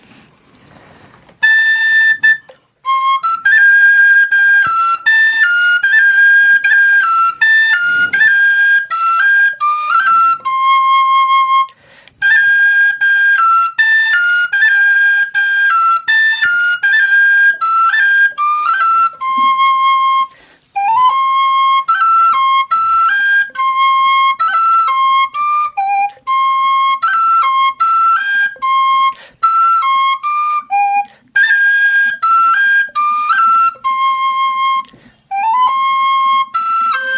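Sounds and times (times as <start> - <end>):
Slovak folk whistle flute pistalka solo melody played live: 1.4 - 37.1.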